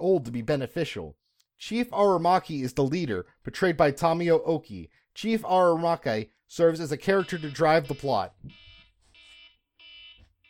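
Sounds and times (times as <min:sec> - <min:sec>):
speech: 0:00.0 - 0:08.7
timer alarm beeping: 0:07.1 - 0:10.4.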